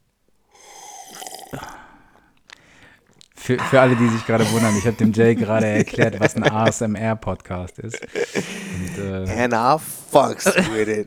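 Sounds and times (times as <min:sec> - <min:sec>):
wet slurping sip of water: 0:00.5 - 0:02.6, 0:03.6 - 0:05.7
soft gulp of water: 0:00.6 - 0:06.0
laughter: 0:03.5 - 0:09.5
speech: 0:03.5 - 0:11.0.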